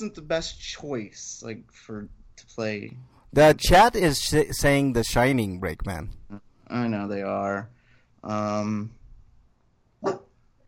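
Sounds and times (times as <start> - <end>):
speech: 0.0 - 9.0, 10.0 - 10.2
dog barking: 10.0 - 10.3.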